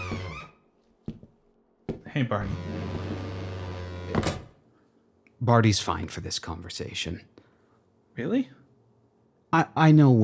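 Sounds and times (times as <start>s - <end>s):
door opening or closing with a whoosh or thud: 0.0s - 0.6s, 2.4s - 4.6s
steady mechanical hum: 0.0s - 10.2s
speech: 2.0s - 2.9s, 5.4s - 7.4s, 8.2s - 8.6s, 9.5s - 10.2s.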